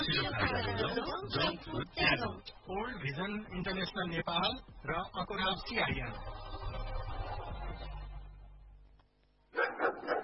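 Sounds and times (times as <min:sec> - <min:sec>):
speech: 0:00.1 - 0:07.0
aggressive pet dog barking: 0:09.5 - 0:10.1.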